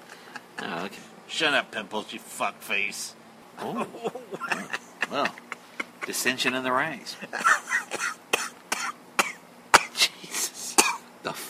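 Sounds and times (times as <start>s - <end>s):
speech: 0.8s - 5.4s, 6.1s - 8.2s
laughter: 3.6s - 8.0s
person coughing harshly: 4.0s - 5.6s, 7.4s - 10.1s, 10.7s - 11.1s.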